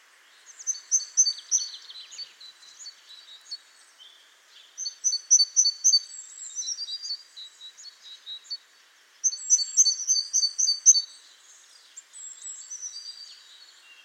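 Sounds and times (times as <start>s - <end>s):
soft steady hiss: 0.0s - 14.0s
great tit Parus major calling: 0.6s - 2.8s, 4.8s - 7.2s, 9.2s - 11.1s.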